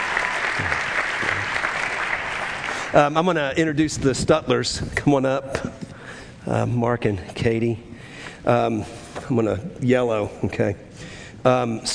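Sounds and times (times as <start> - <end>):
church congregation clapping during a service: 0.0 - 3.5
speech: 2.9 - 5.8, 6.4 - 11.9.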